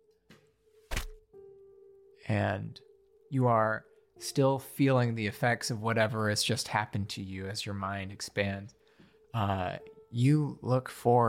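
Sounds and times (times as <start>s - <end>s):
fletched arrow striking wood with a heavy thud: 0.9s - 1.2s
speech: 2.3s - 11.2s.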